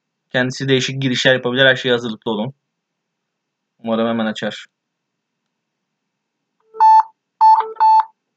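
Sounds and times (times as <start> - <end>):
speech: 0.3 - 2.6, 3.8 - 4.7
phone keypad dialing tones: 6.7 - 8.1.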